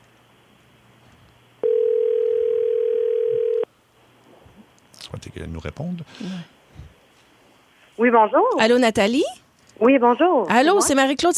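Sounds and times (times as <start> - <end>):
telephone ringback tone while placing a call: 1.6 - 3.7
speech: 5.4 - 6.6, 8.0 - 11.3.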